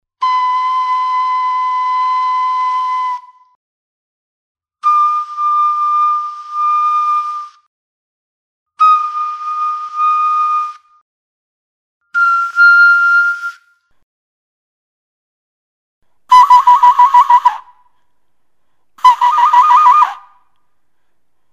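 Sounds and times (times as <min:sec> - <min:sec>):
globular flute: 0:00.1 - 0:03.6, 0:04.8 - 0:07.7, 0:08.7 - 0:11.0, 0:12.0 - 0:14.0, 0:16.3 - 0:18.1, 0:19.0 - 0:20.6.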